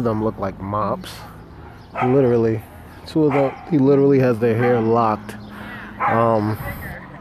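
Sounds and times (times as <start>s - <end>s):
speech: 0.0s - 5.4s, 6.0s - 6.8s
dog barking: 1.2s - 2.4s, 3.2s - 3.8s, 4.5s - 5.0s, 6.0s - 6.4s.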